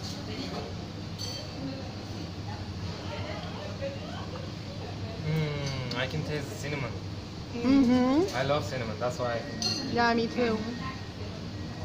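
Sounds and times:
several people chattering in a noisy room: 0:01.4 - 0:11.8
speech: 0:06.1 - 0:10.9
glasses clinking in a toast: 0:09.4 - 0:10.0.

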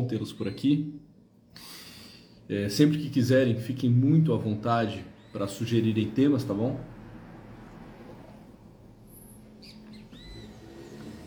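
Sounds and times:
birds chirping in the early morning: 0:00.0 - 0:01.2, 0:04.7 - 0:06.1, 0:09.2 - 0:11.2
speech: 0:00.0 - 0:01.8, 0:02.5 - 0:06.9.

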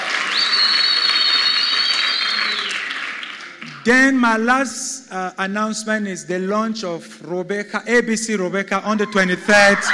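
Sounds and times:
audience applauding: 0:00.0 - 0:03.9
speech: 0:03.9 - 0:09.9.

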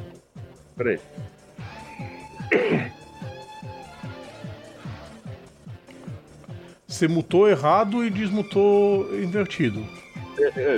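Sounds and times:
speech: 0:00.8 - 0:01.4, 0:07.0 - 0:10.7
person coughing: 0:02.4 - 0:03.0.

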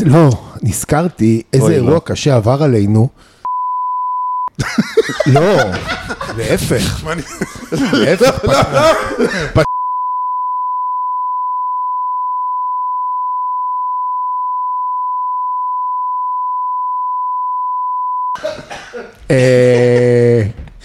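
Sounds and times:
speech: 0:00.0 - 0:03.3, 0:04.6 - 0:09.7, 0:19.3 - 0:20.6
censor beep tone: 0:03.5 - 0:04.5, 0:09.7 - 0:18.4
laughter: 0:04.6 - 0:09.7, 0:18.4 - 0:20.4
cough-like burst: 0:18.4 - 0:19.2.

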